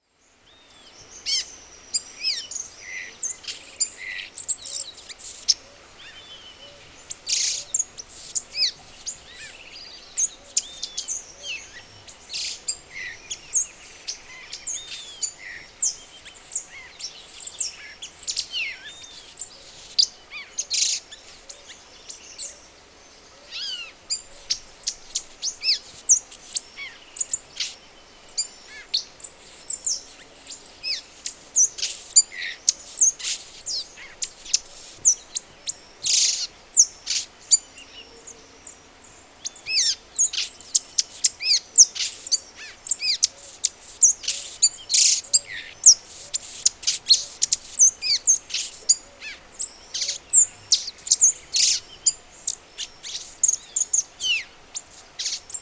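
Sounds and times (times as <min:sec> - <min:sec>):
violaceous euphonia singing: 0:00.0 - 0:55.6.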